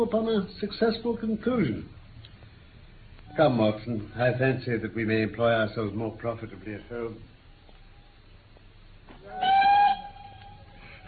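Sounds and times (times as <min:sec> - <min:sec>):
speech: 0:00.0 - 0:02.0, 0:03.4 - 0:07.3
train whistle blast at a suburban railway halt: 0:09.3 - 0:10.7.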